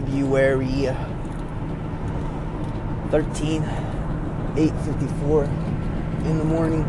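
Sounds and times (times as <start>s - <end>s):
car interior engine and road drone while driving: 0.0s - 6.8s
speech: 0.1s - 1.2s, 3.1s - 6.8s.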